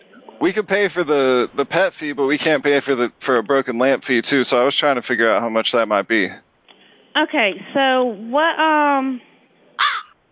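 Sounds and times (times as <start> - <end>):
speech: 0.4 - 6.4, 7.2 - 9.3
crow cawing inside a room: 9.8 - 10.2.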